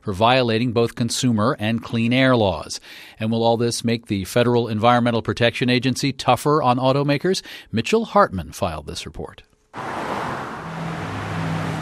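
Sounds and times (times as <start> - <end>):
speech: 0.0 - 10.0
cars whizzing by on an American highway: 9.8 - 11.8.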